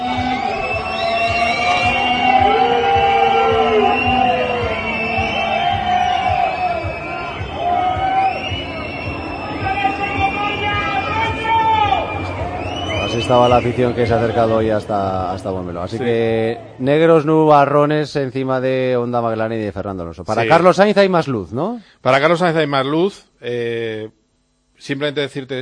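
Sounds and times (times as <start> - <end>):
crowd booing at a racing circuit: 0.0 - 16.9
speech: 13.3 - 24.2, 24.8 - 25.6.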